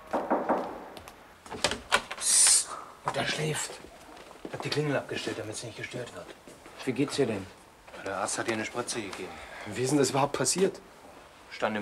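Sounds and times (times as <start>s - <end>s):
knocking on a door: 0.1s - 1.0s
speech: 3.0s - 10.9s, 11.5s - 11.7s.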